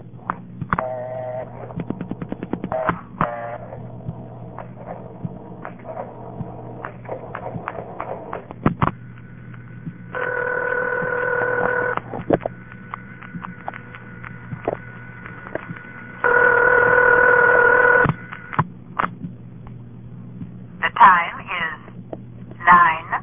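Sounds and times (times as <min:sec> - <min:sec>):
constant low mains hum: 0:00.0 - 0:23.2
sustained steady telephone tone: 0:00.8 - 0:01.7, 0:10.1 - 0:12.0, 0:15.1 - 0:18.5.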